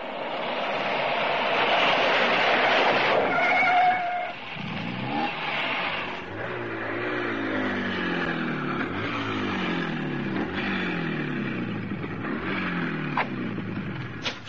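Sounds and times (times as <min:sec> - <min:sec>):
truck engine droning as the vehicle pulls over: 0:00.0 - 0:14.2.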